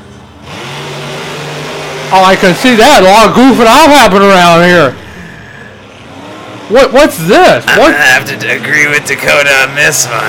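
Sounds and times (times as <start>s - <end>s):
monster truck engine revving: 0.0s - 10.2s
speech: 2.1s - 5.0s, 6.7s - 10.2s.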